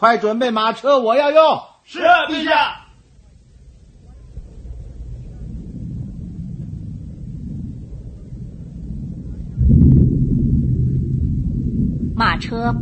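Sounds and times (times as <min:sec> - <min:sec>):
speech: 0:00.0 - 0:02.8, 0:12.2 - 0:12.8
stormy wind roaring in a low steady rumble: 0:02.1 - 0:12.8
rain: 0:02.4 - 0:12.8
deep crash of thunder rolling: 0:02.9 - 0:12.8.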